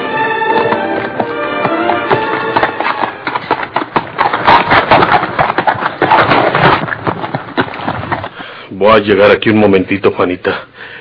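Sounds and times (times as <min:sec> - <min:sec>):
horse hooves clip-clopping: 0:00.2 - 0:08.5
speech: 0:09.0 - 0:10.7.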